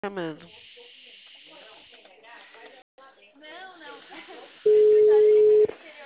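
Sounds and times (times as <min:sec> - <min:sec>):
telephone ringback tone on an outgoing call over a narrow phone line: 0:04.7 - 0:05.7.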